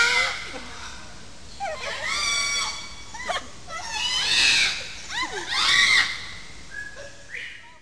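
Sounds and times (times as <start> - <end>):
parrot screeching: 0.0 - 0.5, 1.6 - 6.4.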